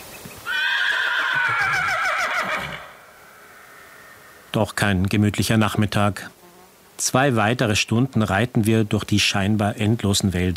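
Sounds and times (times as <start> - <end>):
faint outdoor noise: 0.0 - 10.5
horse neighing: 0.5 - 4.4
speech: 4.6 - 6.4, 7.0 - 10.5.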